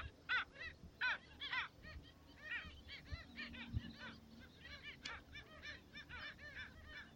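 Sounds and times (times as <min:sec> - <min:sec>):
black skimmer giving nasal yapping calls: 0:00.0 - 0:07.1
low rumbling background noise: 0:00.0 - 0:07.1.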